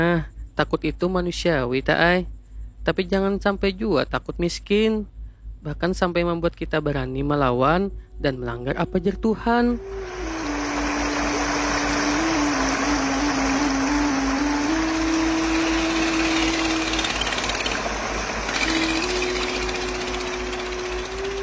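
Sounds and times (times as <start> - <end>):
speech: 0.0 - 10.2
low mechanical hum: 0.0 - 21.4
rushing water of a river: 9.8 - 21.4.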